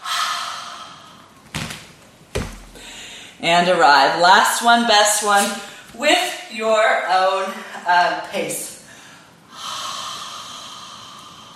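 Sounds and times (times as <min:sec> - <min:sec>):
deep breathy exhale during a yoga handstand sequence: 0:00.0 - 0:01.3, 0:08.9 - 0:11.5
dull thumps: 0:01.5 - 0:02.9
speech: 0:03.4 - 0:08.7.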